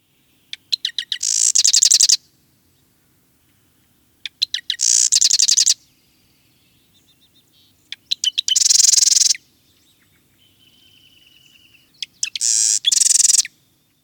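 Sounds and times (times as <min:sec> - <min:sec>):
Western Marsh Wren calling: 0:00.4 - 0:02.2, 0:03.5 - 0:14.0.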